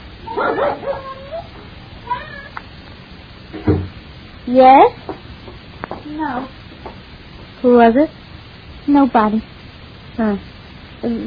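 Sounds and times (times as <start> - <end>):
dog barking and yelping: 0.2 - 2.6
speech: 4.5 - 5.0, 6.2 - 6.6, 7.6 - 8.2, 8.9 - 9.6, 10.2 - 11.2.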